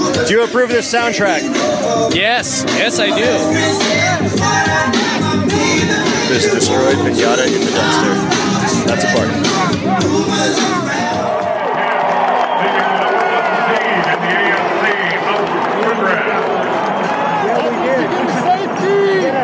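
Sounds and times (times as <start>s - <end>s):
speech: 0.3s - 11.3s
large crowd roaring and cheering: 2.6s - 6.4s, 7.2s - 19.4s.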